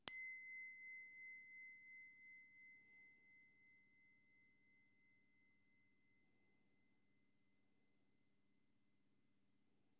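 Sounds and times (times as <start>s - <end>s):
weak small bowl sound: 0.0s - 6.6s.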